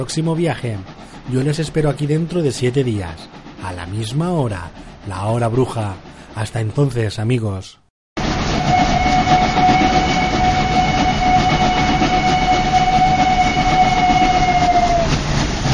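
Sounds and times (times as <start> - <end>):
train rumbling pulling into a station platform: 0.0 - 7.4, 8.2 - 15.7
speech: 0.0 - 7.8
train whistle tone: 8.4 - 15.3.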